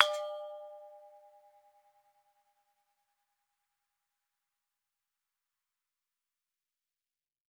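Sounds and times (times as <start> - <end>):
gamelan bonang: 0.0 - 1.0.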